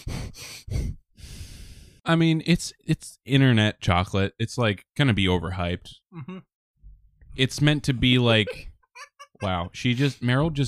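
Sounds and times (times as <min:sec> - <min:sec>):
heavy airy breaths against the microphone: 0:00.0 - 0:02.0
speech: 0:02.1 - 0:06.5, 0:07.4 - 0:08.7, 0:09.4 - 0:10.6
laughter: 0:07.8 - 0:10.2.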